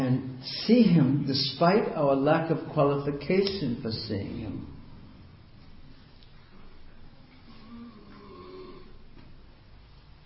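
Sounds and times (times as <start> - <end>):
speech: 0.0 - 4.8
person snoring softly: 7.5 - 9.0.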